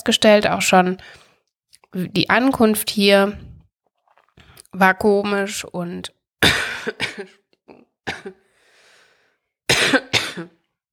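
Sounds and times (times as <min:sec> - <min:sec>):
speech: 0:00.0 - 0:01.2, 0:01.9 - 0:03.5, 0:04.7 - 0:08.4
harsh coughing close to a microphone: 0:06.4 - 0:08.4, 0:09.7 - 0:10.6
raspy breath: 0:08.4 - 0:09.5.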